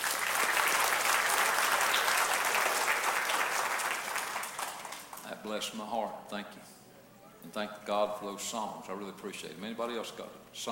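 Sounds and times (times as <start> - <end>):
audience applause: 0.0 - 5.2
speech: 5.4 - 6.8, 7.4 - 10.7.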